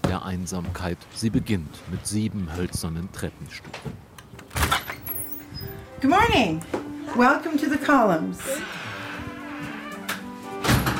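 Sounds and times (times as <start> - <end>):
speech: 0.2 - 4.1, 5.6 - 8.9
door of a bed and breakfast in a red-brick house opening: 3.7 - 6.4, 8.4 - 10.9.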